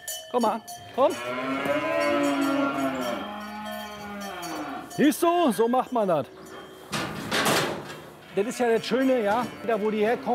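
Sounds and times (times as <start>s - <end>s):
speech: 0.3s - 2.6s, 5.0s - 6.4s, 8.4s - 10.3s
cow mooing long and drawn-out: 0.9s - 5.0s, 8.2s - 10.3s.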